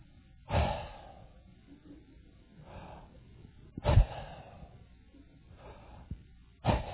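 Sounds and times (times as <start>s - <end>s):
voice imitating a man's labored wheezing breathing: 0.5s - 1.4s, 2.6s - 4.9s, 5.5s - 6.9s.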